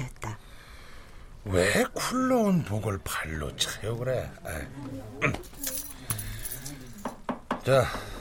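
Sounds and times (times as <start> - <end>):
speech: 1.4 - 5.7, 7.6 - 8.1
front gate keys jangling as they are handed over: 5.4 - 7.2.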